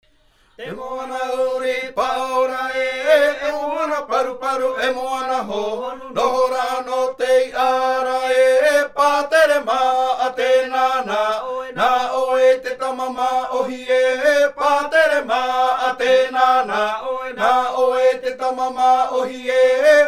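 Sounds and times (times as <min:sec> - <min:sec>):
Maohi polyphonic choral chanting: 0:00.6 - 0:20.0.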